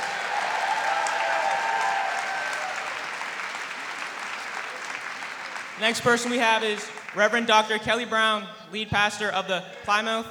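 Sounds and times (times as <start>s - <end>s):
audience applause after a performance: 0.0s - 7.2s
speech: 5.8s - 10.3s.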